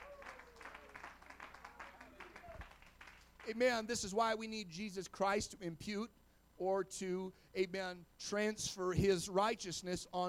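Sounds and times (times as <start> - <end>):
congregation clapping hands in applause: 0.0 - 3.6
speech: 3.4 - 10.2.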